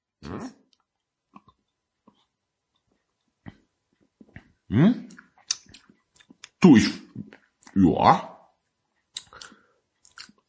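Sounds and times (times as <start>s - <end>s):
mouth clicks: 4.3s - 7.8s, 9.1s - 10.4s
speech: 4.7s - 5.1s, 6.6s - 7.0s, 7.8s - 8.3s
wet lip smacks against a microphone with no pop filter: 5.1s - 6.6s, 9.1s - 10.4s.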